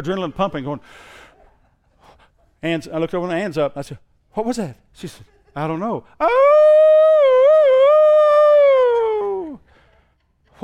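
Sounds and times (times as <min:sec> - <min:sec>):
speech: 0:00.0 - 0:01.2, 0:02.6 - 0:07.0
voice imitating a puppy howl: 0:06.2 - 0:09.6.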